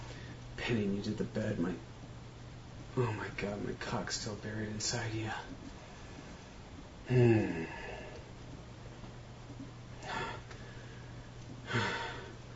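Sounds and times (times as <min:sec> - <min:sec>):
low steady hum: 0:00.0 - 0:12.5
speech: 0:00.6 - 0:01.9, 0:03.0 - 0:05.8, 0:07.1 - 0:07.9
heavy breathing into someone's ear and onto their neck: 0:07.1 - 0:08.3, 0:10.0 - 0:12.5.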